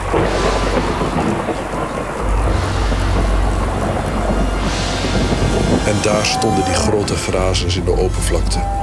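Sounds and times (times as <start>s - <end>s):
deep rolling thunder: 0.0s - 8.8s
heavy steady wind-driven rain in a thunderstorm: 0.0s - 8.8s
speech: 6.0s - 8.8s.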